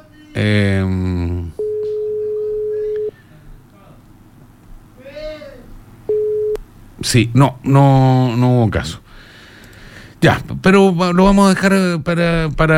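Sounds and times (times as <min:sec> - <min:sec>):
speech: 0:00.4 - 0:01.3, 0:07.0 - 0:09.0, 0:10.2 - 0:12.7
WhatsApp call ringing tone: 0:01.6 - 0:03.2, 0:06.1 - 0:06.6.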